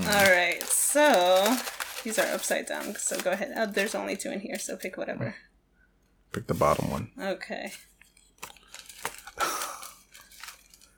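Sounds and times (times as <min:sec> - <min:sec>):
speech: 0:00.1 - 0:05.5, 0:06.3 - 0:08.5
crunchy munching on a pumpkin spice Oreo cookie: 0:06.4 - 0:07.1, 0:08.4 - 0:10.9.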